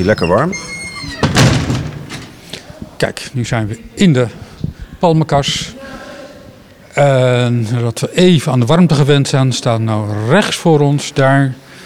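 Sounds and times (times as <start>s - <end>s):
speech: 0.0s - 1.2s, 3.0s - 4.4s, 5.0s - 5.8s, 7.0s - 11.6s
large grey greenhouse door squeaking open: 0.0s - 2.4s.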